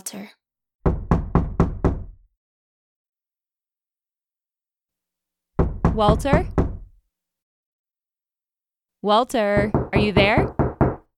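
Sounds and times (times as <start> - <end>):
speech: 0.1 - 0.4, 6.0 - 6.6, 9.0 - 10.6
firm knocks on a door: 0.8 - 2.3, 5.6 - 7.0, 9.6 - 11.1.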